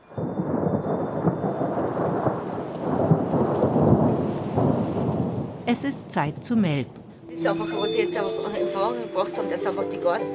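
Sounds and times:
constant wash of rain: 0.0s - 10.3s
deep rolling thunder: 0.3s - 5.7s
speech: 5.7s - 10.3s.

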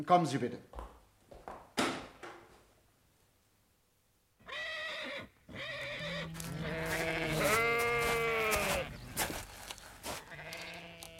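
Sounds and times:
speech: 0.0s - 0.8s
sheep bleating in a paddock: 4.4s - 9.4s, 10.0s - 11.1s.

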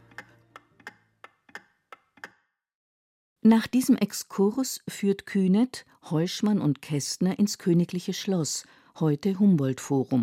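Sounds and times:
pendulum clock ticking: 0.0s - 2.4s
speech: 3.4s - 10.2s.

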